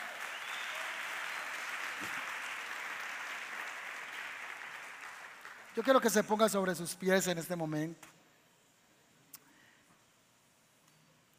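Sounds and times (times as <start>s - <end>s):
audience applauding: 0.0s - 6.2s
speech: 5.8s - 8.2s.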